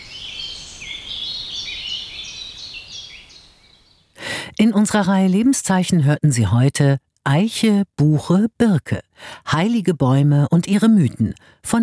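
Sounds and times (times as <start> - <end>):
birds singing in the treetops of an old oak in spring: 0.0 - 4.2
speech: 4.6 - 11.8.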